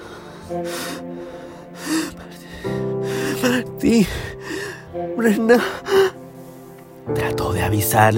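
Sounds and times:
person gasping with ragged breaths: 0.0s - 6.4s
speech: 0.5s - 2.0s, 3.4s - 4.4s, 5.2s - 5.9s, 7.1s - 8.1s.

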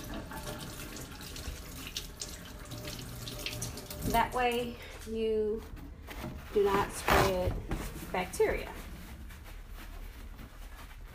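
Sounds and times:
tap water running into a sink during handwashing: 0.0s - 4.7s
speech: 4.1s - 5.8s, 6.5s - 8.8s.

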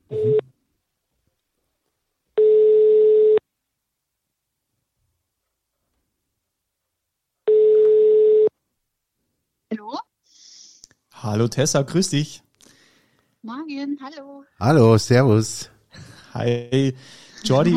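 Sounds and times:
telephone ringing tone of a call to Austria: 2.4s - 3.4s, 7.5s - 8.5s
speech: 11.3s - 12.4s, 13.4s - 15.7s, 16.4s - 17.7s.

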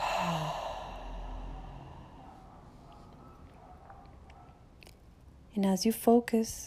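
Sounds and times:
deep exhale through open mouth: 0.0s - 2.3s
speech: 5.6s - 6.6s.

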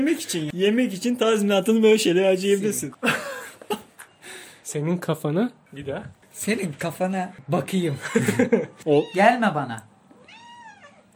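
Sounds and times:
speech: 0.0s - 3.9s, 4.7s - 9.9s
laughter: 3.0s - 4.2s, 8.0s - 8.8s
cat meowing: 8.9s - 9.5s, 10.1s - 11.1s.

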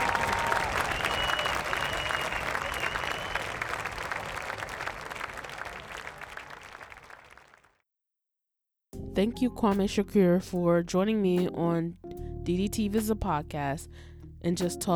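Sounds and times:
faint cheers: 0.0s - 7.5s
crowd applauding: 0.0s - 7.8s
speech: 9.2s - 14.9s.

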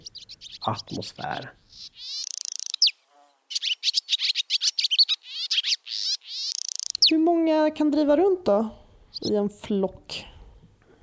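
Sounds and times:
barn swallow twittering with chirps and trills: 0.0s - 7.2s, 9.1s - 9.4s
speech: 0.6s - 1.6s, 7.7s - 10.2s.

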